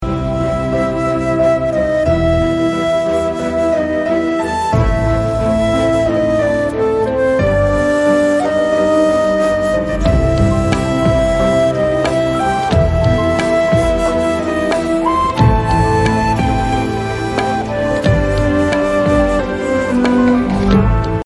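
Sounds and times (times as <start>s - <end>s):
flute ringtone: 0.2s - 21.2s.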